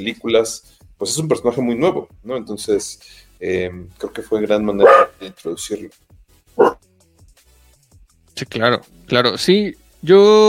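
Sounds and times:
speech: 0.0s - 6.0s, 8.4s - 10.4s
single sharp dog bark: 4.8s - 5.3s, 6.6s - 6.8s.

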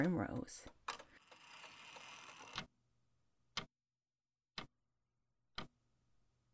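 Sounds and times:
speech: 0.0s - 0.8s
clockwork clock ticking: 0.0s - 2.7s, 5.5s - 5.8s
clock's silver clockwork cog and gears whirring and grinding: 0.9s - 2.7s.

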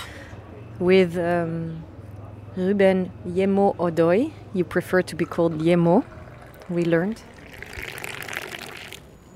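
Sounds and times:
speech: 0.8s - 1.9s, 2.6s - 7.9s
mint tea being poured into a glass on a rooftop terrace: 5.0s - 9.1s.

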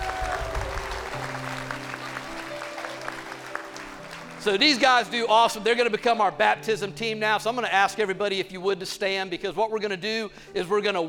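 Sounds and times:
audience clapping to celebrate baptisms: 0.0s - 5.1s
speech: 4.4s - 11.0s.

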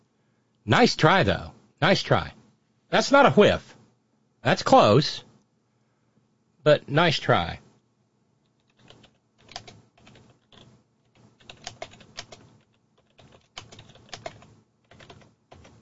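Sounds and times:
speech: 0.7s - 3.8s, 4.4s - 5.2s, 6.6s - 7.6s
typing on a computer keyboard: 8.5s - 15.7s.

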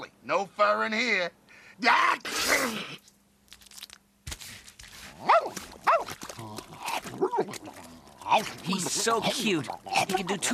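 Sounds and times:
speech: 0.3s - 3.1s, 5.2s - 10.5s
dog chewing: 5.1s - 10.4s.

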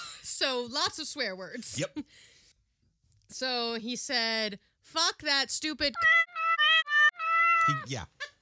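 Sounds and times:
speech: 0.4s - 2.3s, 3.3s - 6.3s, 7.7s - 8.2s
cat meows covering swear words: 5.9s - 8.0s.

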